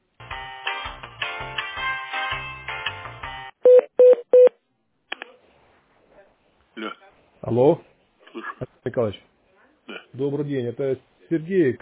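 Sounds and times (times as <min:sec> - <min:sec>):
short telephone beeps: 0:03.7 - 0:04.5
speech: 0:07.5 - 0:07.9, 0:08.9 - 0:09.3, 0:10.2 - 0:11.7.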